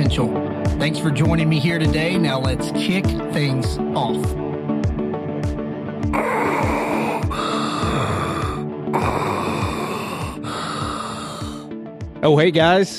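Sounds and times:
low rhythmic background: 0.0 - 12.9
speech: 0.1 - 4.5, 12.2 - 12.9
loud deep breathing in a breathing exercise: 6.2 - 11.7.

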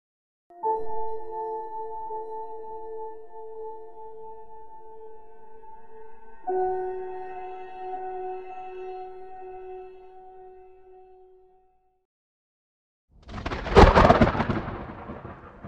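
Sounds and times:
low sustained musical tone: 0.5 - 12.0
thunderclap and rumbling from a coming storm: 13.2 - 15.6.

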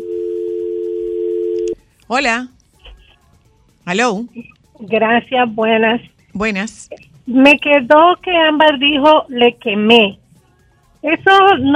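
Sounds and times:
telephone line tone: 0.0 - 1.8
speech: 2.1 - 2.5, 3.9 - 10.2, 11.0 - 11.7.

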